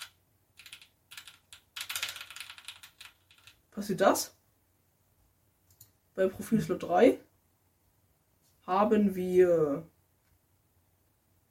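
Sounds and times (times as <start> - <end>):
keys pressed on a new RGB computer keyboard: 0.0 - 3.6
speech: 3.8 - 4.4, 6.2 - 7.3, 8.7 - 9.9.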